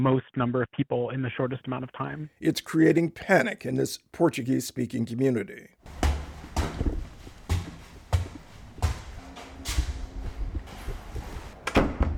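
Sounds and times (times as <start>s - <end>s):
speech: 0.0s - 6.1s
footsteps on creaky wooden stairs: 5.9s - 11.6s.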